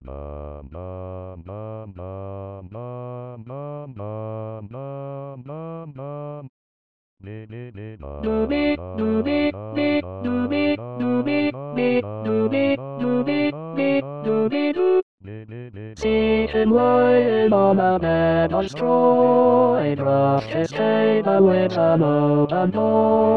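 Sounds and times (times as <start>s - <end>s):
tenor singing: 7.3s - 23.3s.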